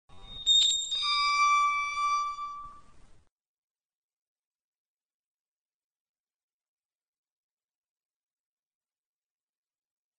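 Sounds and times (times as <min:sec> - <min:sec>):
gate creaking: 0:00.1 - 0:03.0.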